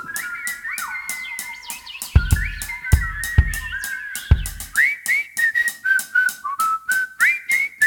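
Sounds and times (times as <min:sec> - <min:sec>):
person whistling bird-like chirps and trills with pursed lips: 0:00.0 - 0:07.8
heavy thumps: 0:02.2 - 0:04.8.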